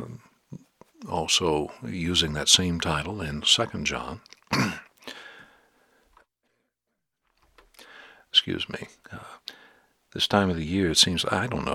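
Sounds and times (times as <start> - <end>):
speech: 1.1 - 4.8, 8.5 - 9.4, 10.1 - 11.7
person clearing throat: 4.5 - 5.0
person coughing: 4.5 - 5.0.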